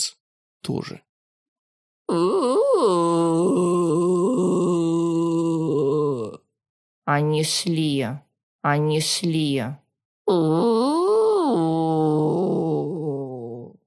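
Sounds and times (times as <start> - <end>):
speech: 0.0 - 1.1, 2.1 - 3.7, 7.1 - 12.4
woman imitating a zombie groan in a hospital ward: 2.1 - 6.5, 10.3 - 13.8.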